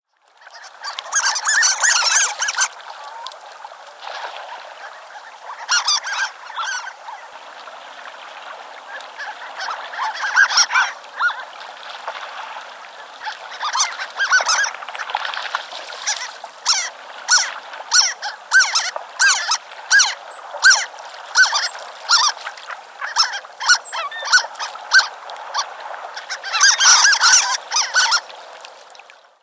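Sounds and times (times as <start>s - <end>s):
Harlequin duck: 0.4s - 3.2s, 5.2s - 7.0s, 9.2s - 11.4s, 13.2s - 14.8s, 16.0s - 28.2s.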